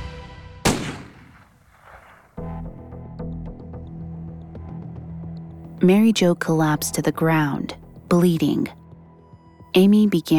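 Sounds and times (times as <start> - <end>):
handgun gunshot: 0.6 - 2.2
speech: 5.8 - 8.8, 9.8 - 10.3.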